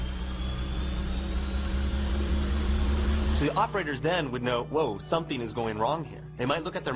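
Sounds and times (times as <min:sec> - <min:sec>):
jet engine roar: 0:00.0 - 0:03.8
speech: 0:03.4 - 0:06.9.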